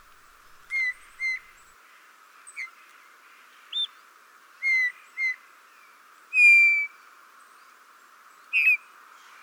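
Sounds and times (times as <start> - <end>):
Eurasian bullfinch piping whistle calls: 0.7 - 1.7, 4.6 - 5.4, 6.3 - 6.9, 8.5 - 8.8.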